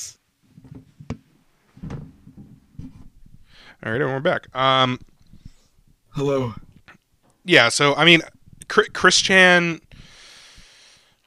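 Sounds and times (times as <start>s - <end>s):
wooden door shutting: 1.8s - 2.9s
speech: 3.8s - 5.1s, 6.2s - 6.7s, 7.4s - 9.8s.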